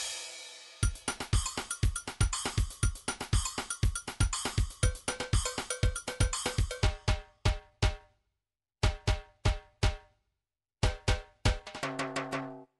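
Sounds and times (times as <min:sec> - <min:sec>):
MIDI samba drums: 0:00.8 - 0:08.0, 0:10.9 - 0:12.5.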